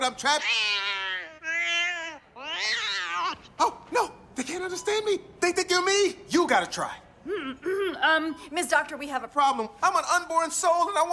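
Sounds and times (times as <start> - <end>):
speech: 0.0 - 1.0, 2.6 - 11.1
cat meowing: 0.4 - 3.5.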